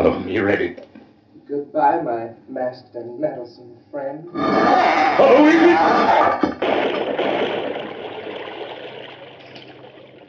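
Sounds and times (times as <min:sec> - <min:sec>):
speech: 0:00.0 - 0:00.9, 0:01.5 - 0:07.7
water rushing into a well: 0:06.6 - 0:10.2.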